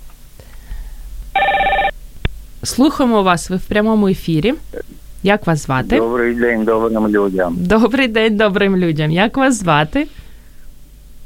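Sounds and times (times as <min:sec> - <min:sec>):
low hum: 0:00.0 - 0:11.2
telephone ringing for an incoming call: 0:01.4 - 0:01.9
speech: 0:02.6 - 0:10.2.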